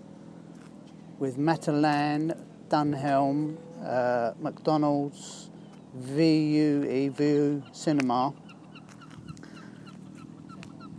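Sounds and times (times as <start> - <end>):
steady low rumble: 0.0 - 10.9
speech: 1.2 - 8.4
seagulls calling by the sea: 3.2 - 10.9.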